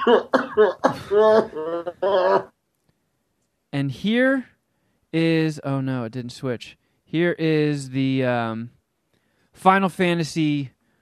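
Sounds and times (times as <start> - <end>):
speech: 0.0 - 2.5, 3.7 - 4.5, 5.1 - 8.8, 9.6 - 10.8
throaty, strongly voiced coughing: 0.0 - 2.5.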